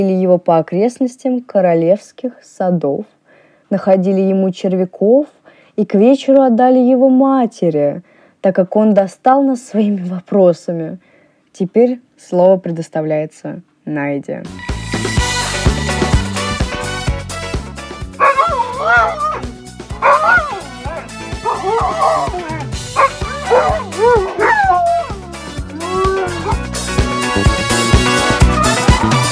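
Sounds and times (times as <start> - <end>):
speech: 0.0 - 14.7
steady music: 14.4 - 29.3
dog yipping, barking and whimpering: 18.2 - 26.6.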